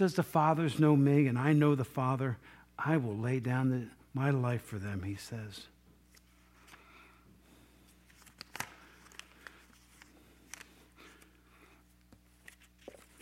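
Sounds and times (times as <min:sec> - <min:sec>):
speech: 0:00.0 - 0:05.7
paper rustling and crinkling: 0:08.0 - 0:11.4, 0:12.0 - 0:13.2.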